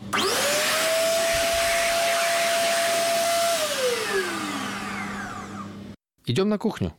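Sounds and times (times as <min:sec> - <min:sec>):
electric hand dryer blowing: 0:00.0 - 0:05.9
speech: 0:06.3 - 0:06.9.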